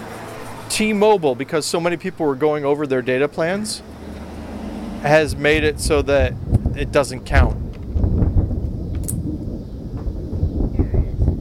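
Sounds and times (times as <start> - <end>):
speech: 0.7 - 4.0, 5.0 - 7.6
deep continuous thunder rumbling: 3.6 - 11.4.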